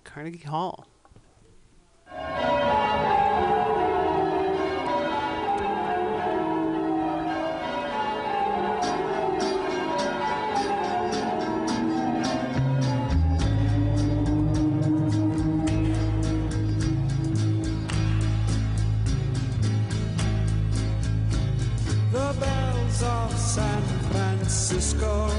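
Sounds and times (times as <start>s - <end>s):
speech: 0.2s - 0.9s
bells ringing in steady rhythm: 2.1s - 18.8s
festive instrumental Christmas tune performed at Carnegie Hall: 2.1s - 25.3s
heavy bass line: 12.6s - 25.3s.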